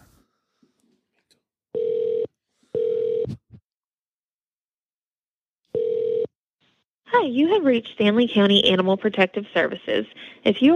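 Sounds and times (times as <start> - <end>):
telephone ringback tone on an outgoing call: 1.8 - 3.4, 5.7 - 6.3
speech: 7.2 - 10.7.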